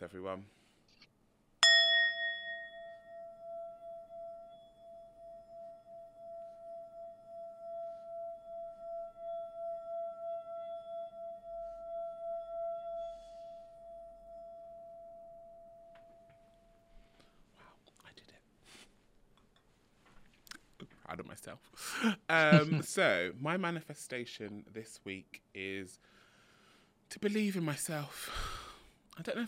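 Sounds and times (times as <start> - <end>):
speech: 0.1 - 0.7, 21.4 - 26.2, 27.1 - 28.6, 29.2 - 29.4
small gong struck and ringing: 1.6 - 17.0.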